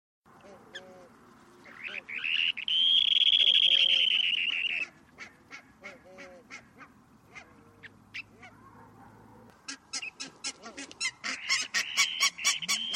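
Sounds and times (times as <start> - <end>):
bird short sharp calls: 1.6 - 8.6, 9.7 - 12.9.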